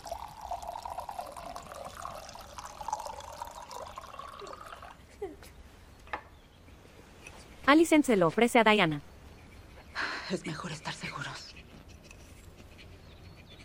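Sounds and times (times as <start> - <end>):
milky tea pouring from a jug into a cup: 0.0 - 5.0
speech: 7.7 - 9.1, 10.3 - 11.2.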